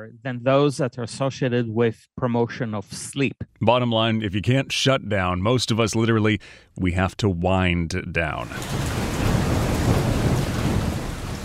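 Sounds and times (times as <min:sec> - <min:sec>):
speech: 0:00.0 - 0:09.0
thunder rumbling played from a bedside speaker: 0:08.3 - 0:11.4
heavy rain played from a bedside speaker: 0:08.4 - 0:11.4.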